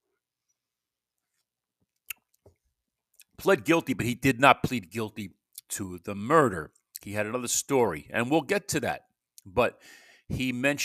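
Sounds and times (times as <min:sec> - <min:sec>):
soft wet mouth noises sipping hot chocolate: 0:02.0 - 0:03.4
speech: 0:03.4 - 0:10.8.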